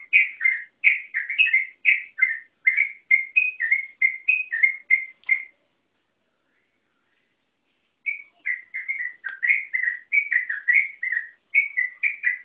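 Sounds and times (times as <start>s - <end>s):
yellow-vented bulbul long continuous song: 0.0s - 5.5s, 8.0s - 12.4s.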